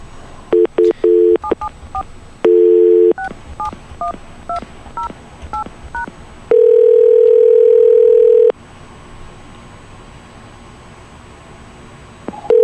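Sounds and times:
touch-tone dialing of a phone number: 0.0s - 8.5s, 11.7s - 12.6s
long steady telephone ringing tone: 0.0s - 10.3s, 11.2s - 12.6s
quiet phone line noise: 0.0s - 12.6s.

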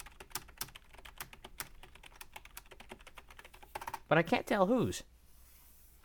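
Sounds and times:
typing on a chunky heavy-sounding computer keyboard: 0.0s - 4.0s
speech: 4.1s - 5.1s.

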